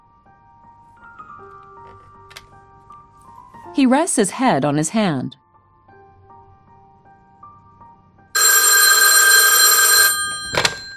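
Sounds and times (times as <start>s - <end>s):
speech: 3.8s - 5.4s
telephone bell ringing: 8.4s - 10.9s.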